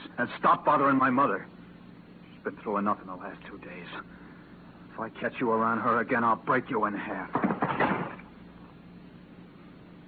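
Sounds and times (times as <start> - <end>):
speech: 0.2 - 1.6, 2.4 - 4.3, 5.0 - 7.8
door slammed shut: 7.3 - 8.3.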